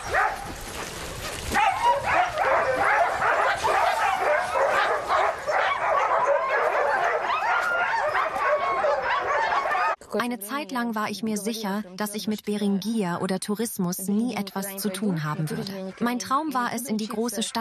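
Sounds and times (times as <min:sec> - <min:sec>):
pack of sled dogs barking and yipping: 0:00.0 - 0:10.0
speech: 0:10.2 - 0:17.6.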